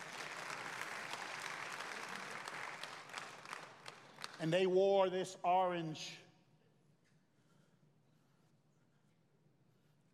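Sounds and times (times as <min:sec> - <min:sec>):
audience applauding: 0:00.0 - 0:04.5
speech: 0:04.4 - 0:06.2.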